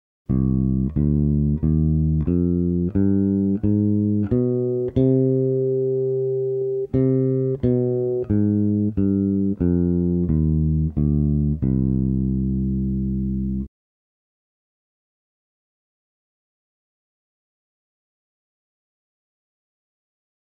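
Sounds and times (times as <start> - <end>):
harmonic minor scale: 0.3 - 13.7.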